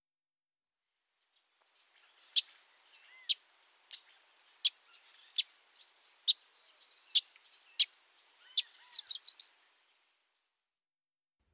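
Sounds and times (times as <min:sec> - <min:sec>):
Wilson's warbler chip calls: 0:01.8 - 0:09.8.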